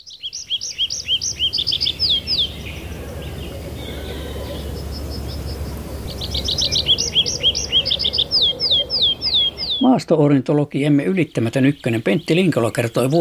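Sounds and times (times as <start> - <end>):
tree pipit singing: 0.0 - 13.1
speech: 9.8 - 13.1.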